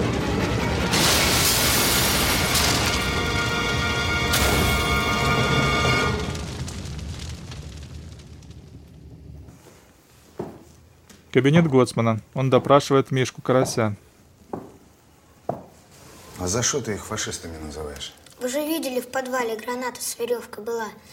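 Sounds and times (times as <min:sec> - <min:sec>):
truck tumbling off a high cliff and exploding: 0:00.0 - 0:09.6
speech: 0:11.4 - 0:14.1, 0:16.4 - 0:21.1.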